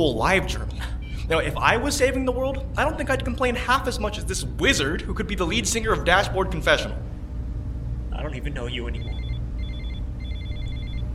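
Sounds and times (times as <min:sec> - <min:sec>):
speech: 0:00.0 - 0:07.0, 0:08.2 - 0:09.2
mobile phone ringing with a bright warbling electronic tone: 0:09.0 - 0:11.1.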